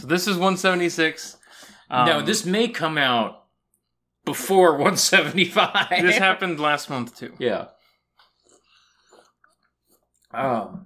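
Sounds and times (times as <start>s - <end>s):
speech: 0.0s - 3.4s, 4.2s - 7.8s, 10.3s - 10.8s
slurping sip of Sprite soda: 8.2s - 10.2s.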